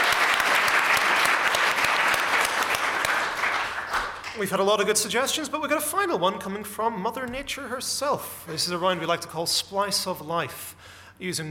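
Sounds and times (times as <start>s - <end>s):
crowd clapping energetically: 0.0s - 4.6s
speech: 4.4s - 11.4s.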